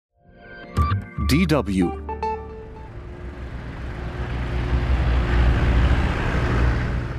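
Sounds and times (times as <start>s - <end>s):
speech: 1.3s - 2.0s
many car engines idling bumper to bumper on a blocked eight-lane highway: 2.9s - 7.1s.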